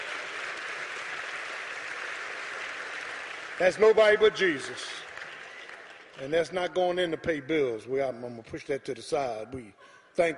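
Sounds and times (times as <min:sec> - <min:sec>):
crowd applauding: 0:00.0 - 0:06.9
speech: 0:03.6 - 0:05.0, 0:06.2 - 0:10.3.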